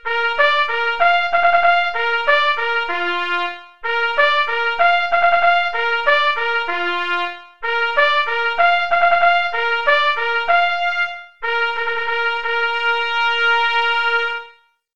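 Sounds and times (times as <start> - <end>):
bugle call: 0.0 - 14.6.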